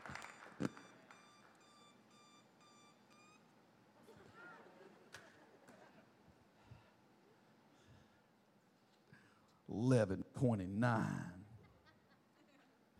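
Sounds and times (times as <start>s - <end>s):
electronic alarm beeping in high tones: 0.2s - 3.4s
speech: 9.7s - 11.4s.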